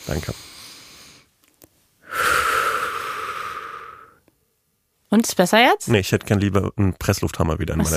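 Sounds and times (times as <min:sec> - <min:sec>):
speech: 0:00.0 - 0:00.5, 0:05.2 - 0:07.9
wheezy nasal inhale with whistling edge: 0:00.3 - 0:01.3, 0:02.0 - 0:04.2.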